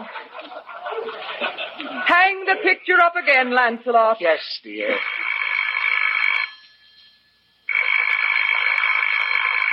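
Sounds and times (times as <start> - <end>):
laughter: 0.0 - 3.1
speech: 2.5 - 5.2
telephone bell ringing loudly: 4.9 - 9.7.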